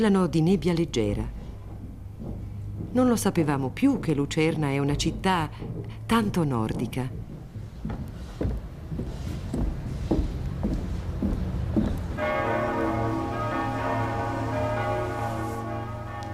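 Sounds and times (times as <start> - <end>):
speech: 0.0 - 1.4, 2.9 - 7.2
low rumble of street noise: 0.0 - 16.3
church bells in Lucerne ringing in the morning: 12.2 - 16.3.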